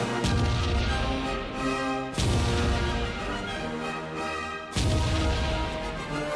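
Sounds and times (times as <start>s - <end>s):
fireworks exploding: 0.2s - 3.6s, 4.7s - 6.2s.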